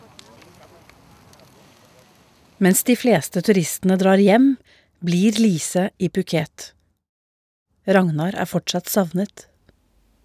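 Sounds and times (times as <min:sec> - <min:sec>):
large funeral pyre fire roaring and crackling: 0:00.0 - 0:04.0
speech: 0:02.6 - 0:06.8, 0:07.9 - 0:09.5.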